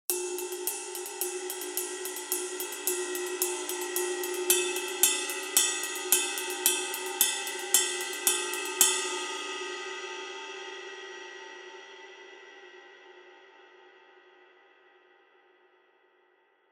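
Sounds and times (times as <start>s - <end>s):
custom ride cymbal: 0.1s - 11.0s.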